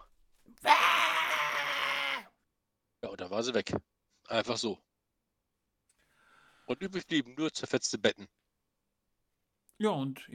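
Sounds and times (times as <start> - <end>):
person imitating a frustrated hissing scream: 0.6 - 2.3
speech: 3.3 - 4.9, 6.7 - 8.4, 9.8 - 10.3.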